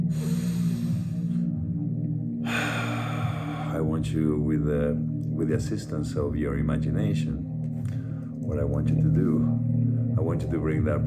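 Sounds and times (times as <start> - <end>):
steady sustained low drone: 0.0 - 11.0
deep breath drawn in during a guided relaxation exercise: 0.1 - 1.5, 2.4 - 3.8, 7.9 - 8.3
speech: 3.8 - 11.0.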